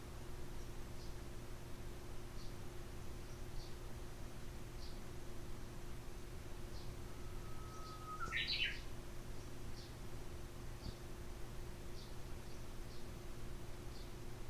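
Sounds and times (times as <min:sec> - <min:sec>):
low steady hum: 0:00.0 - 0:14.4
Japanese bush warbler singing: 0:07.1 - 0:08.8.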